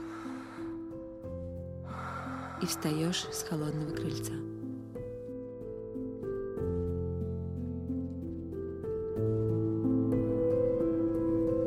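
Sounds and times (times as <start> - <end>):
breathy noisy intake of air: 0.0 - 1.0, 1.8 - 3.3
soft sustained musical tones: 0.0 - 11.6
speech: 2.6 - 4.5.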